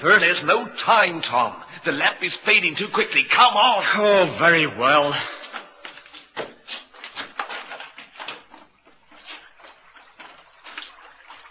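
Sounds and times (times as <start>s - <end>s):
speech: 0.0s - 5.4s
water trickling and dripping in a cave: 5.5s - 11.5s.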